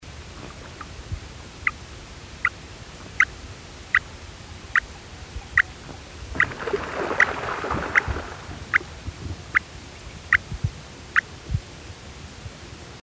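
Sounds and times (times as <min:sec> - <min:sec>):
Silvery Grebe Podiceps occipitalis calling: 0:01.6 - 0:01.8, 0:02.4 - 0:10.5.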